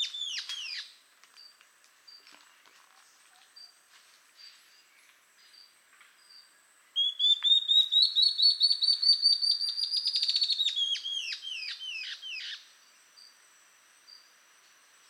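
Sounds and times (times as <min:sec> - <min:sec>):
Ocellated antbird Phaenostictus mcleannani mcleannani song: 0:00.0 - 0:13.4.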